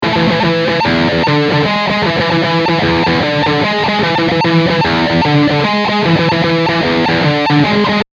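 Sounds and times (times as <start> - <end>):
overdriven guitar on bridge pickup: 0.0 - 8.1.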